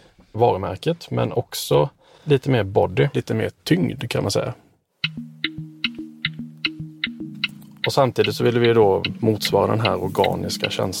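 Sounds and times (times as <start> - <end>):
speech: 0.4 - 4.6, 7.9 - 10.9
car turn signal indicator ticking: 5.0 - 10.9.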